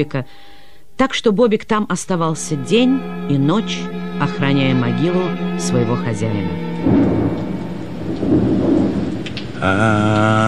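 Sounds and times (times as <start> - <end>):
speech: 0.0 - 7.4, 9.6 - 10.4
sustained wavering tonal sound: 2.0 - 9.2
low thunder rumbling: 2.6 - 10.4
rain pouring steadily: 6.1 - 10.4.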